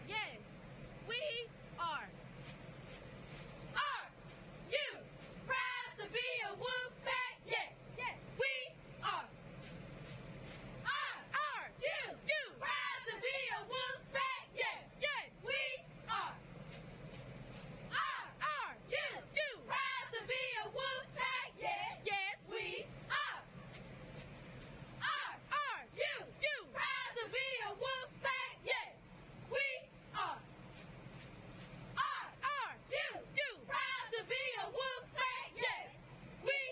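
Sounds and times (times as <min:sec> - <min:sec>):
steady outdoor rumble at a high school stadium on game day: 0:00.0 - 0:36.7
high school cheerleaders chanting at a stadium: 0:03.8 - 0:09.3, 0:10.8 - 0:16.4, 0:17.9 - 0:23.6, 0:25.0 - 0:30.5, 0:32.0 - 0:36.7.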